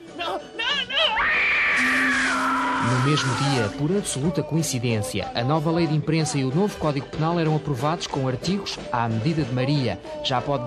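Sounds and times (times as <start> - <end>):
person screaming in indignation: 1.0 - 3.7
speech: 3.1 - 10.6.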